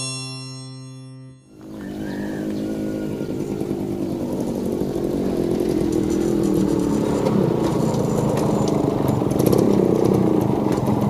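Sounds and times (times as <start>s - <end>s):
motorcycle engine riding to a dairy cow farm: 1.5s - 11.0s.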